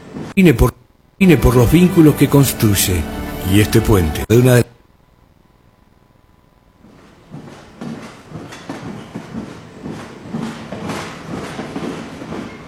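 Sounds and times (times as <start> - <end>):
train running on rails: 0.0 - 4.3, 6.9 - 12.6
speech: 0.4 - 4.8.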